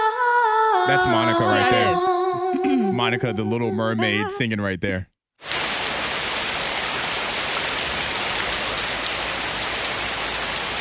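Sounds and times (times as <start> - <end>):
speech: 0.8 - 5.1
heavy rain drumming on surfaces: 5.4 - 10.7.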